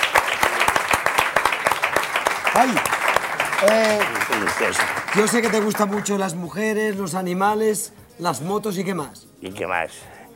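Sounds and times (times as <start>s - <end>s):
applause: 0.0s - 7.0s
speech: 2.6s - 3.0s, 3.6s - 10.2s.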